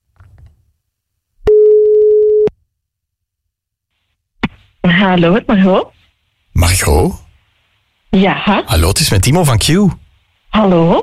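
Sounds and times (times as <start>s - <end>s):
telephone ringback tone while placing a call: 1.5s - 2.5s
speech: 5.0s - 6.0s, 6.6s - 7.2s, 8.1s - 11.0s.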